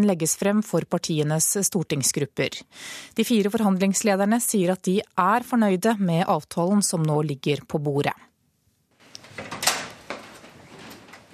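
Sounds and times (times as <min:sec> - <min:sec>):
speech: 0:00.0 - 0:08.3
rustling and shuffling: 0:08.9 - 0:11.3
door creaking open with clatter: 0:09.0 - 0:11.3.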